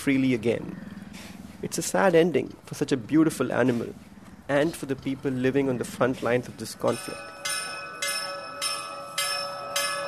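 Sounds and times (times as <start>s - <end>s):
speech: 0.0s - 0.8s, 1.6s - 7.4s
temple bells ringing for evening prayers: 6.6s - 10.0s.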